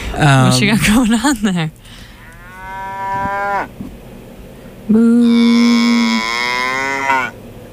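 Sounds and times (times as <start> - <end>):
speech: 0.2 - 1.8, 4.9 - 5.3
cow mooing: 2.2 - 3.7, 5.0 - 7.4.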